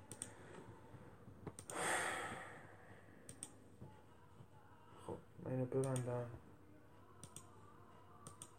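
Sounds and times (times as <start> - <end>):
computer keyboard clicks: 0.0 - 0.4, 1.5 - 1.8, 3.3 - 3.6, 5.8 - 6.2, 7.2 - 7.5, 8.2 - 8.5
speech: 5.6 - 6.5.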